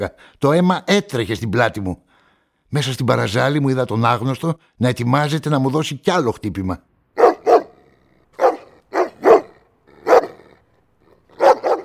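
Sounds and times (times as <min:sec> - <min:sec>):
speech: 0:00.0 - 0:02.1, 0:02.7 - 0:06.9
stray dog barking aggressively at night: 0:07.2 - 0:10.6, 0:11.3 - 0:11.8
stray dog growling faintly: 0:07.4 - 0:11.8.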